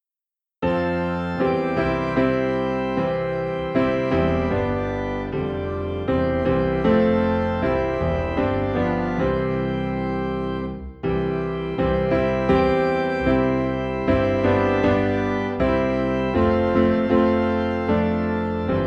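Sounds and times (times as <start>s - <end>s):
piano playing low in C: 0.6s - 18.8s.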